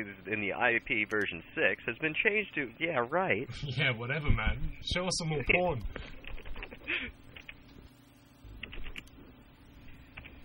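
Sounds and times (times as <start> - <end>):
speech: 0.0 - 6.2, 6.9 - 7.2
low steady hum: 0.0 - 10.4
typing on a computer keyboard: 7.4 - 7.6, 8.6 - 9.2.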